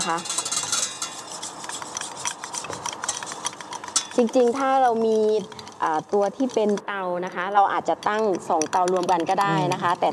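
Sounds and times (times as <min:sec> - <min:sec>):
speech: 0:00.0 - 0:00.4, 0:04.2 - 0:10.1
whisk stirring a mixture as powder dissolves: 0:00.0 - 0:10.1.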